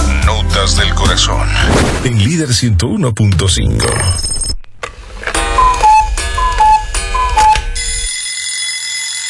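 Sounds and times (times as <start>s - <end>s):
speech: 0.7s - 4.5s
alarm clock ringing: 5.4s - 9.2s.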